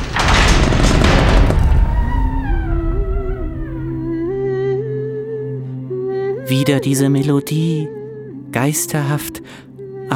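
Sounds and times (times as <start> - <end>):
heavy castle door being opened: 0.0 - 4.5
speech: 6.5 - 10.1.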